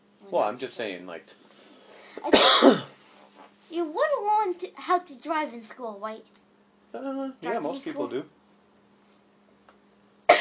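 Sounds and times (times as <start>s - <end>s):
speech: 0.3s - 1.5s, 2.2s - 3.0s, 3.7s - 8.4s
person coughing: 2.3s - 2.9s.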